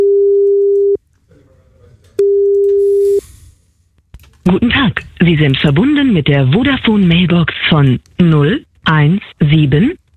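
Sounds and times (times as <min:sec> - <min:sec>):
ringback tone while calling a German mobile phone: 0:00.0 - 0:01.0
faint murmur: 0:01.1 - 0:02.2
speech: 0:04.5 - 0:10.0.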